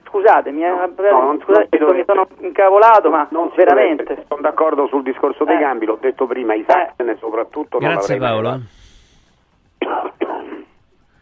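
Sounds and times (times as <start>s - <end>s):
speech: 0.2s - 8.8s
person coughing: 9.8s - 10.7s.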